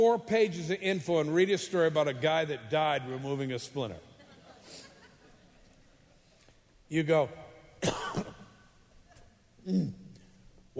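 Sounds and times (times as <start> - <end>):
speech: 0.0 - 4.1, 6.9 - 8.3, 9.6 - 10.0
person coughing: 7.8 - 8.5.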